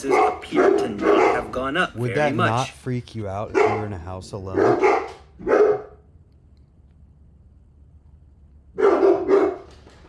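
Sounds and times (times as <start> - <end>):
dogs barking: 0.0 - 1.8, 3.5 - 6.0, 8.8 - 9.7
speech: 0.0 - 5.6.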